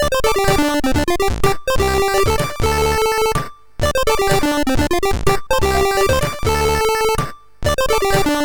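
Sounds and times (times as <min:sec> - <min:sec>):
chiptune motif on a MOS6581R4 SID chip: 0:00.0 - 0:08.4.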